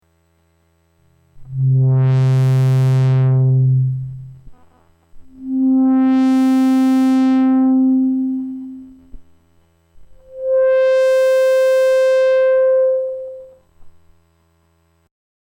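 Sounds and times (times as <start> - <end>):
triangle wave filter sweep: 1.4 - 9.4, 10.0 - 13.6.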